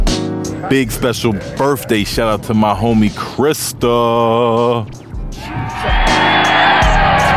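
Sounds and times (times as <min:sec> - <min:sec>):
speech: 0:00.7 - 0:06.1
crowd applause: 0:05.4 - 0:07.3.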